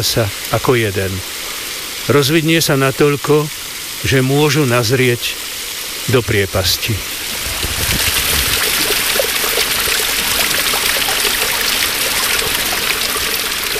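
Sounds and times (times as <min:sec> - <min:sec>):
speech: 0:00.0 - 0:05.4, 0:06.1 - 0:07.2
waterfall roaring: 0:00.0 - 0:13.7
water splashing and gurgling: 0:07.0 - 0:13.7.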